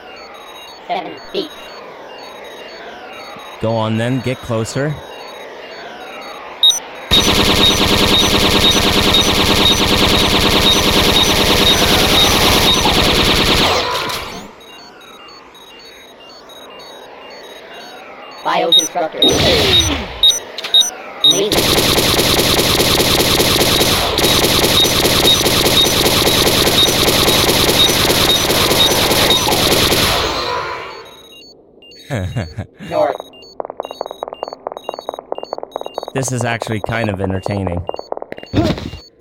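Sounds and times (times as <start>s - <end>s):
speech: 0.9s - 2.0s, 3.6s - 5.1s, 7.6s - 11.2s, 18.6s - 20.1s, 32.4s - 33.2s, 36.2s - 38.7s
automatic bolt gun firing in a video game: 7.1s - 14.3s, 21.4s - 30.6s
laughter: 32.0s - 33.2s.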